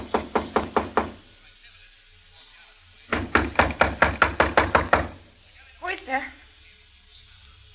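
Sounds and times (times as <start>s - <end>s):
firm rapid knocking on a hotel room door: 0.0s - 1.2s, 3.1s - 5.2s.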